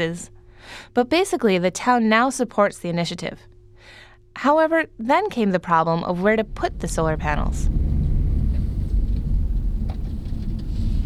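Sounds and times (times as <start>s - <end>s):
speech: 0.0s - 7.8s
car driving down a bumpy dirt road to an abandoned apple orchard: 6.4s - 11.0s.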